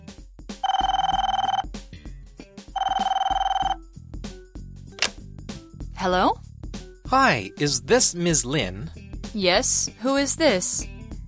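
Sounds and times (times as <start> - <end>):
telephone ringing with a buzzy trilling tone during an outgoing call: 0.6 - 1.6, 2.8 - 3.8
speech: 6.0 - 6.4, 7.1 - 10.9.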